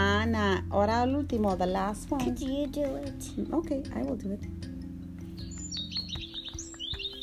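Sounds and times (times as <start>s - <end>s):
speech: 0.2s - 4.7s
bird chirping high bright tweets: 5.2s - 7.2s.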